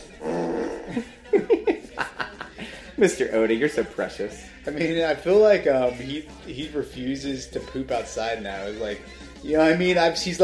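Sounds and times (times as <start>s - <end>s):
dog low rumbling growl: 0.0s - 1.0s
laughter: 0.6s - 4.1s
speech: 1.0s - 1.6s, 3.0s - 10.4s.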